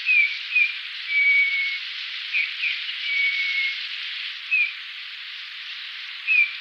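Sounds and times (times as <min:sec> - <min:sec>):
constant background hiss: 0:00.0 - 0:06.5
Eurasian bullfinch whistling: 0:00.1 - 0:03.8, 0:06.3 - 0:06.5.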